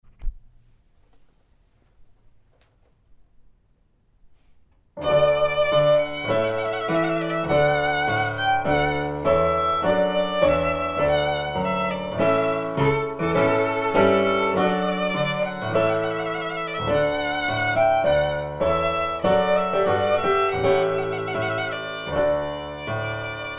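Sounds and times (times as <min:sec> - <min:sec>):
piano keyboard: 0:04.9 - 0:23.5
violin: 0:05.0 - 0:23.5.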